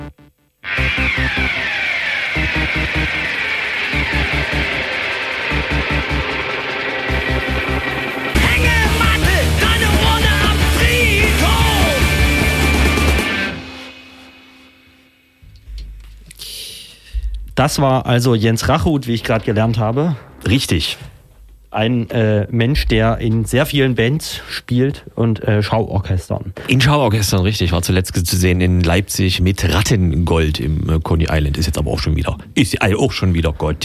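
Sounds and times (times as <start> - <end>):
loud harsh song from an album: 0.7 - 15.9
speech: 17.6 - 21.1, 21.7 - 33.8.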